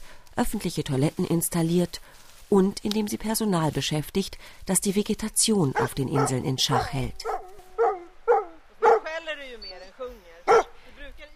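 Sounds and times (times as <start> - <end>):
speech: 0.4 - 7.4
dog barking on an island in a skerry archipelago: 5.7 - 9.2, 10.5 - 10.8
dog drawn-out whine: 5.8 - 9.1.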